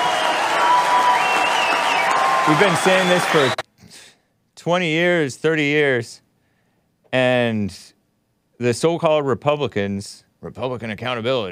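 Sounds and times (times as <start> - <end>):
audience applause: 0.0 - 3.6
speech: 2.5 - 3.6, 4.6 - 6.2, 7.1 - 8.0, 8.6 - 11.5.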